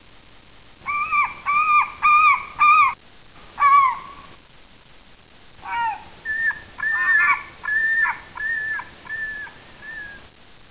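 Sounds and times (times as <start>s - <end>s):
seagull calling: 0.8s - 3.0s, 3.6s - 4.3s, 5.6s - 10.2s.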